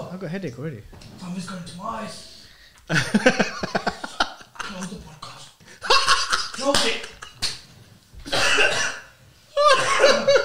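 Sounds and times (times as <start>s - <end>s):
speech: 0.2s - 3.8s, 6.6s - 7.1s
laughter: 2.9s - 5.1s, 5.7s - 7.4s, 9.6s - 10.4s
harsh coughing fits: 8.3s - 10.4s.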